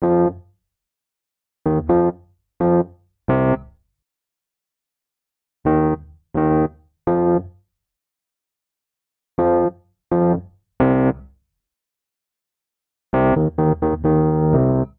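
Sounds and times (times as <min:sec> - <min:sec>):
dub vamp in F minor on electric keyboards: 0:01.7 - 0:03.6, 0:05.7 - 0:07.5, 0:09.4 - 0:11.2, 0:13.2 - 0:14.9.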